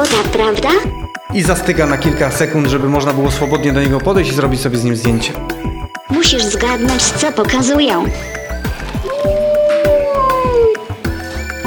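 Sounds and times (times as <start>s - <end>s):
speech: 0.0s - 8.4s
wolf howl played back by a robot through a small speaker: 9.0s - 10.9s.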